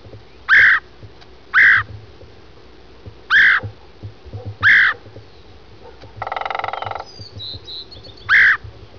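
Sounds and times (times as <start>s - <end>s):
red-headed woodpecker: 3.3s - 3.7s, 4.5s - 8.7s.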